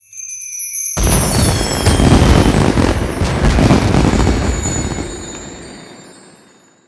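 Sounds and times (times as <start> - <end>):
wedding firework boom: 1.0 - 6.0.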